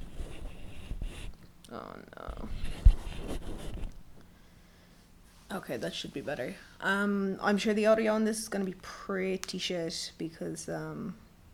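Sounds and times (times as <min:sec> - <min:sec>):
microphone on a kitchen roll rustling and scraping on a coffee table: 0:00.0 - 0:01.4, 0:02.3 - 0:04.3
speech: 0:01.7 - 0:03.9, 0:05.5 - 0:11.2.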